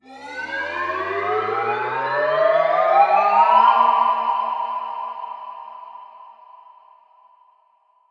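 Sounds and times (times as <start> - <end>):
riser sound effect: 0.0 - 3.7.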